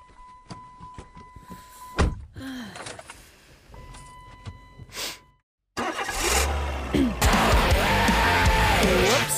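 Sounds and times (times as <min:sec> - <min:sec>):
car engine turning over and idling: 0:05.8 - 0:09.3.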